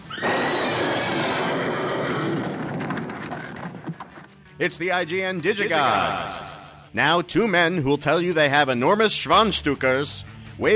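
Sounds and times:
spooked horses neighing in a stable: 0:00.0 - 0:04.3
speech: 0:04.6 - 0:10.7.

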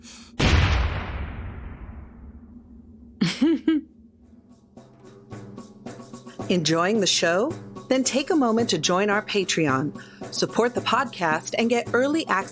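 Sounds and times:
explosion sound effect: 0:00.4 - 0:03.2
speech: 0:03.4 - 0:04.0, 0:06.5 - 0:12.4.

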